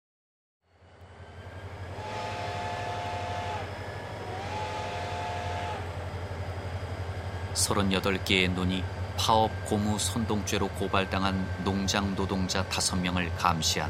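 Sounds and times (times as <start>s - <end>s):
night train departing with a deep low drone: 0.7s - 13.8s
train horn blasts: 1.9s - 6.0s
speech: 7.6s - 13.8s.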